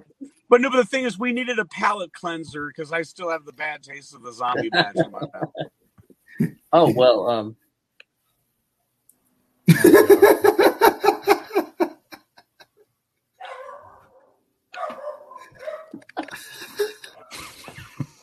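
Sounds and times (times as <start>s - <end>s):
speech: 0.5s - 5.8s, 6.4s - 7.6s
laughter: 0.6s - 5.7s, 6.4s - 7.4s, 9.7s - 12.2s, 16.0s - 18.2s
dog barking: 13.4s - 14.2s, 14.8s - 16.0s.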